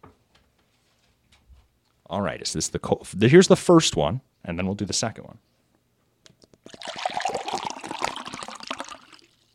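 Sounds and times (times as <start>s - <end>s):
speech: 2.1s - 5.6s
water pouring into a cup: 6.6s - 9.5s.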